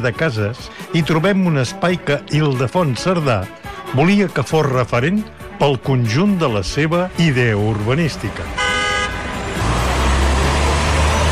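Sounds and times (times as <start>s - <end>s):
speech: 0.0s - 8.7s
busy city traffic on Roger de Llúria street: 7.1s - 11.3s
short car horn toot: 8.6s - 9.2s.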